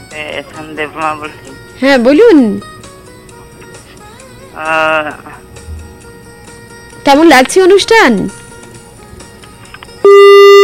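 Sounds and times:
speech: 0:00.2 - 0:02.7, 0:04.6 - 0:05.4, 0:07.1 - 0:08.4, 0:10.0 - 0:10.6
telephone busy tone after a call line drops: 0:10.0 - 0:10.6.

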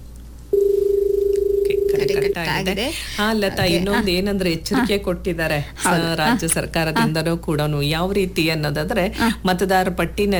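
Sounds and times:
steady low buzzing telephone line tone: 0:00.5 - 0:02.4
speech: 0:02.1 - 0:10.3.

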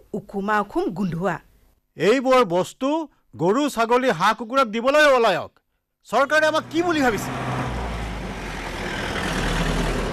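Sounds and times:
speech: 0:00.1 - 0:07.4
several vehicles arriving: 0:06.4 - 0:10.1.

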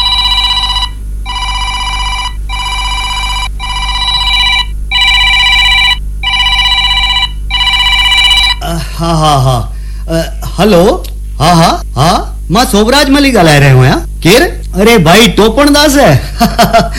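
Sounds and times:
telephone bell ringing: 0:00.0 - 0:08.6
speech: 0:09.0 - 0:09.6, 0:10.6 - 0:11.5, 0:12.5 - 0:16.9.

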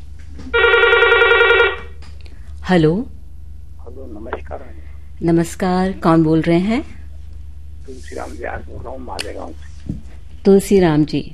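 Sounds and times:
faint hum: 0:00.0 - 0:11.3
telephone ringing with a trilling electronic burst: 0:00.5 - 0:02.0
speech: 0:02.7 - 0:03.2, 0:03.9 - 0:07.0, 0:07.9 - 0:11.3.

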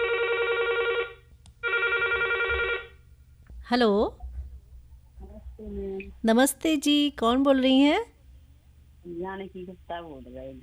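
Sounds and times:
telephone ringing with an electronic trill: 0:00.0 - 0:03.0
speech: 0:03.7 - 0:04.2, 0:05.6 - 0:08.1, 0:09.0 - 0:10.6.

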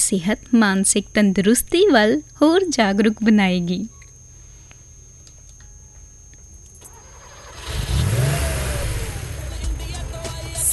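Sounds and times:
speech: 0:00.0 - 0:04.0
car engine revving: 0:07.0 - 0:10.0.

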